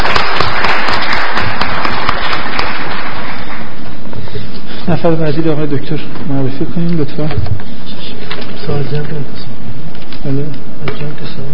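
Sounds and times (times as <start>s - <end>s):
audience applause for an engineer after a presentation: 0.0s - 3.9s
speech: 4.9s - 7.8s, 8.7s - 9.4s, 10.2s - 11.5s.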